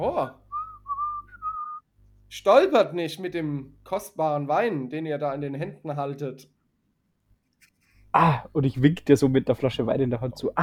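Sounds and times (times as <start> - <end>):
speech: 0.0 - 0.4, 2.3 - 6.5, 8.1 - 10.6
person whistling a short wavering tune while walking: 0.5 - 1.8.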